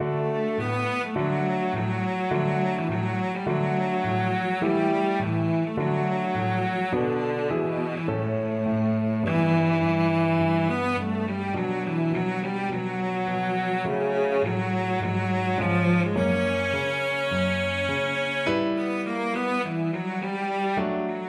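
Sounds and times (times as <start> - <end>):
cello melody: 0.0 - 21.2.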